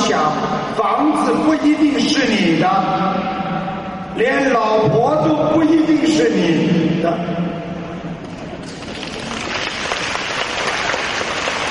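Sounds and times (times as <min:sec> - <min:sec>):
speech: 0:00.2 - 0:03.6, 0:04.2 - 0:07.5
audience clapping: 0:08.6 - 0:11.6.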